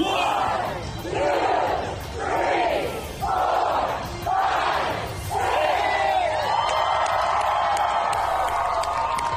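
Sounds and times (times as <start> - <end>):
large crowd of fans chanting in unison at a parade: 0.0 - 6.3
sustained roar of cheering from a crowd of fans: 2.7 - 9.3.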